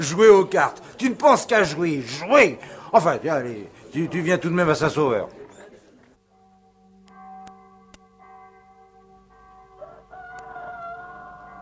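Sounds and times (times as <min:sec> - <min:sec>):
speech: 0:00.0 - 0:05.4
rooster crowing: 0:09.7 - 0:11.5.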